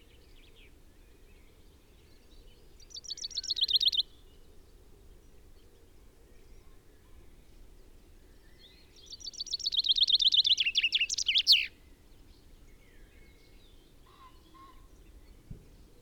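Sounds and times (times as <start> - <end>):
common chaffinch Fringilla coelebs song: 2.8 - 4.1, 9.0 - 16.0
soft thump: 15.4 - 15.8.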